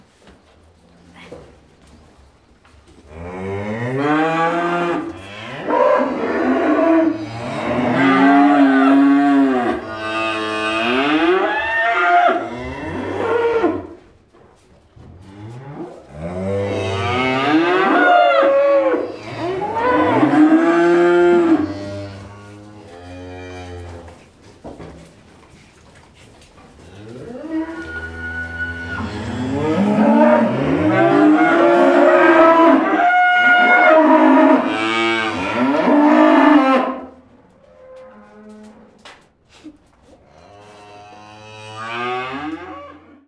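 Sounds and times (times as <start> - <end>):
cows in a stable: 0.0 - 43.2.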